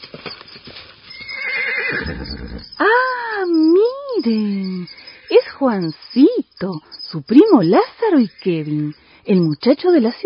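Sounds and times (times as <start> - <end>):
horse hooves galloping at speed on a farm estate: 0.0 - 9.0
horse whinnying loudly: 1.1 - 2.9, 4.2 - 5.6, 8.0 - 8.7
speech: 1.9 - 10.2.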